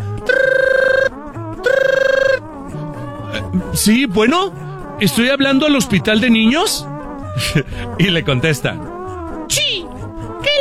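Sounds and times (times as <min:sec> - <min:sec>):
telephone ringing: 0:00.3 - 0:01.1, 0:01.7 - 0:02.4
speech: 0:03.8 - 0:08.9.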